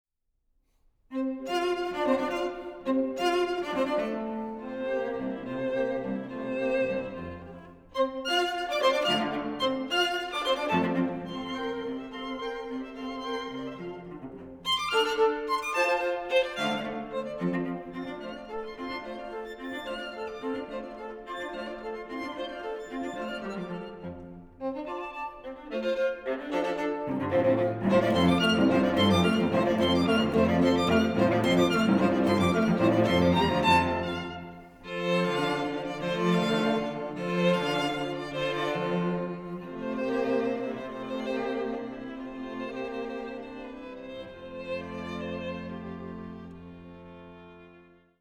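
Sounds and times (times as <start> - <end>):
string quartet playing: 1.1 - 48.2.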